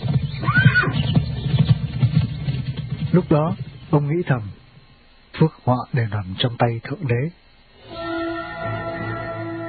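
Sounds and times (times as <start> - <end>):
horse hoofbeats clopping: 0.0 - 4.0
horse whinnying: 0.4 - 1.0
speech: 3.1 - 4.6, 5.4 - 8.0.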